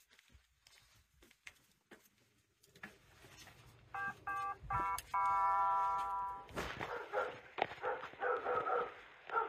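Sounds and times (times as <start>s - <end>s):
doorbell chiming: 5.2s - 6.5s
big dog barking: 6.8s - 9.4s.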